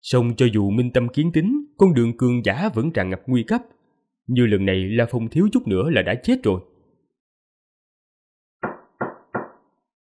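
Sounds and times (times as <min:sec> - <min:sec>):
speech: 0:00.1 - 0:06.7
hard knocking on the door of a hall: 0:08.6 - 0:09.7.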